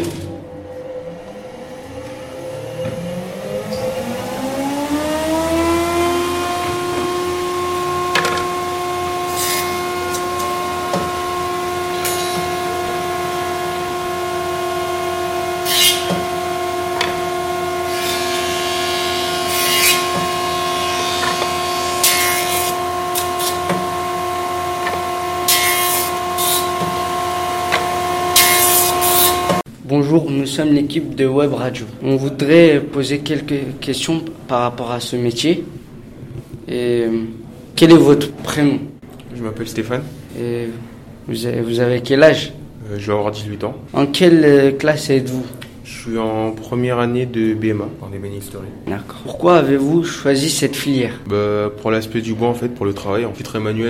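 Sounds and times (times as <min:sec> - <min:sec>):
jointer planing a piece of wood cut on a band saw: 0:00.0 - 0:29.6
speech: 0:30.5 - 0:35.8, 0:36.7 - 0:38.9, 0:39.5 - 0:53.8.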